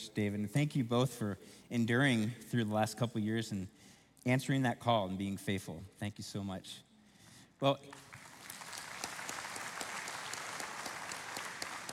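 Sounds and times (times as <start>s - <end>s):
speech: 0.2s - 6.9s, 7.6s - 8.1s
church congregation applauding during a service: 7.9s - 11.9s.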